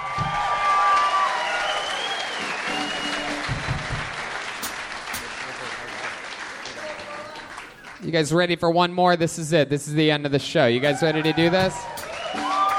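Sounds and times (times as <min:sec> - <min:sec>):
audience applause at a live stand-up comedy show: 0:00.0 - 0:08.1, 0:11.6 - 0:12.7
speech: 0:08.1 - 0:12.1.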